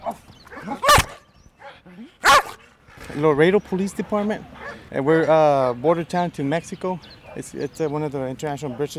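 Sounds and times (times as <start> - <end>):
Belgian Malinois police drug-detection dog barking: 0.8 - 2.6
speech: 3.1 - 8.9.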